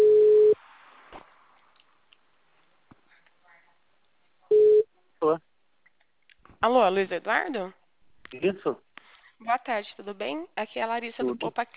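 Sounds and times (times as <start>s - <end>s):
telephone ringing tone while placing a call over a phone line: 0.0s - 0.6s
speech: 5.2s - 5.5s, 6.6s - 11.7s.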